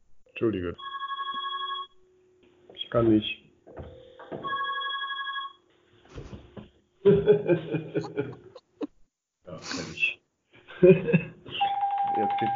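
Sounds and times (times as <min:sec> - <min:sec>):
speech: 0:00.4 - 0:01.0, 0:02.9 - 0:04.5, 0:07.0 - 0:08.5, 0:10.8 - 0:11.4, 0:12.2 - 0:12.5
telephone ringing with electronic trilling tones: 0:00.8 - 0:02.0, 0:03.8 - 0:05.7, 0:11.6 - 0:12.5
laughter: 0:07.0 - 0:08.8, 0:10.7 - 0:11.7.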